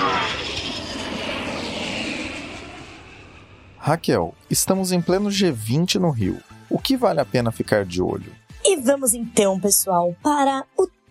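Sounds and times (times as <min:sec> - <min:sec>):
airplane turbine engines roaring during takeoff: 0:00.0 - 0:05.1
speech: 0:03.9 - 0:10.9.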